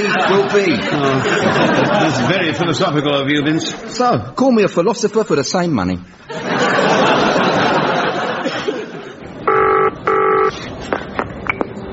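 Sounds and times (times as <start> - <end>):
laughter: 0.0 - 3.0, 6.3 - 9.5
speech: 0.1 - 6.8
telephone ringing with electronic trill: 9.5 - 10.6.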